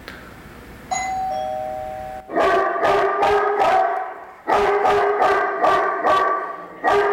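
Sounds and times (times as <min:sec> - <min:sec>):
doorbell chiming: 0:00.9 - 0:02.3
electronic-sounding dog barking: 0:02.2 - 0:07.1.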